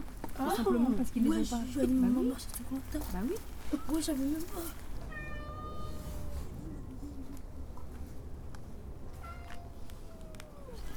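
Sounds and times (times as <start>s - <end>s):
speech: 0.4s - 4.8s
black cat meowing in the rain: 5.0s - 6.6s, 9.2s - 10.9s.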